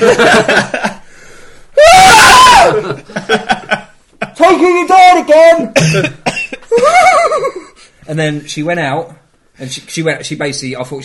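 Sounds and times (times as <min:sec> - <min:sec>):
speech: 0:00.0 - 0:00.6, 0:05.6 - 0:06.2, 0:08.1 - 0:11.0
laughter: 0:00.0 - 0:01.0, 0:02.6 - 0:04.7, 0:05.8 - 0:07.8
loud shrill scream from a TV: 0:01.8 - 0:03.0.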